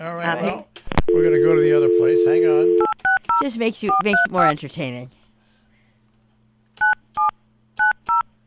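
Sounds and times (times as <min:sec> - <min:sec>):
speech: 0:00.0 - 0:02.8, 0:03.4 - 0:05.2
faint low electrical hum: 0:00.0 - 0:08.4
touch-tone telephone keypad beeps: 0:02.7 - 0:04.3, 0:06.8 - 0:08.3.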